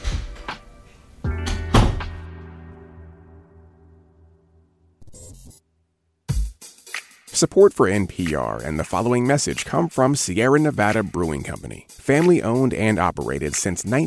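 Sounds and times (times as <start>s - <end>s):
door thumping shut with a heavy resonant bang: 1.4s - 2.2s
speech: 7.4s - 14.0s.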